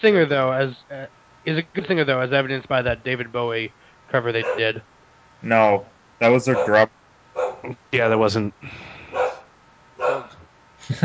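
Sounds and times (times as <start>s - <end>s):
speech: 0.0s - 7.0s, 7.6s - 8.9s, 10.9s - 11.0s
dog barking: 4.4s - 4.8s, 6.2s - 7.7s, 9.1s - 10.4s.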